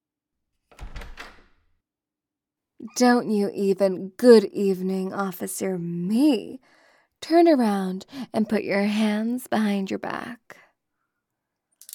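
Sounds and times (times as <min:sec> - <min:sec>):
door pulled open with a scrape and rattle: 0:00.7 - 0:01.7
speech: 0:02.8 - 0:10.6.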